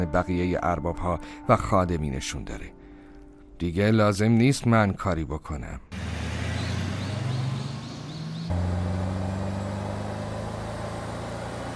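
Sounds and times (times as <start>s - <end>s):
speech: 0.0s - 2.8s, 3.6s - 6.0s
car engine droning while someone drives: 6.0s - 11.7s.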